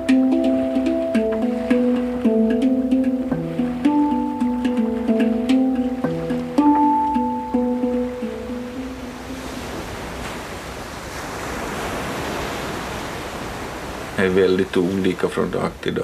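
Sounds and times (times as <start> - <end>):
hang drum playing a slow gentle melody: 0.0 - 9.9
gentle sea swell: 0.0 - 16.0
speech: 14.4 - 16.0.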